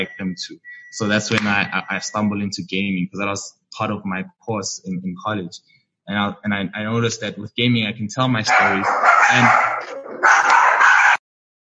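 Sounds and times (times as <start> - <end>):
speech: 0.0 - 10.4
pet dog barking loudly: 8.5 - 11.2.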